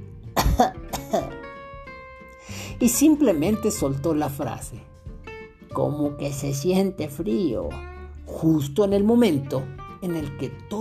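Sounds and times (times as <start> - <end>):
coughing: 0.4 - 1.4
speech: 0.6 - 1.3, 2.8 - 4.9, 5.8 - 10.7.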